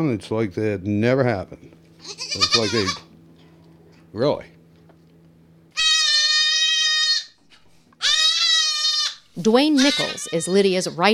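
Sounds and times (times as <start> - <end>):
speech: 0.0 - 3.1, 4.1 - 4.6, 9.4 - 11.1
baby goat screaming: 2.0 - 3.1, 5.7 - 7.4, 8.0 - 10.7.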